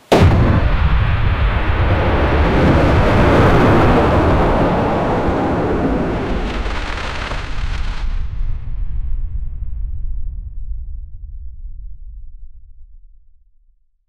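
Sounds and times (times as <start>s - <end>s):
rocket launch: 0.0s - 9.4s.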